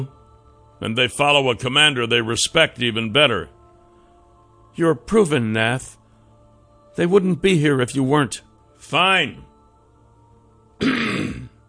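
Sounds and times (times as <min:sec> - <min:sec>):
speech: 0:00.8 - 0:03.6, 0:04.8 - 0:06.0, 0:07.0 - 0:09.5, 0:10.8 - 0:11.4
man clearing his throat: 0:10.8 - 0:11.6.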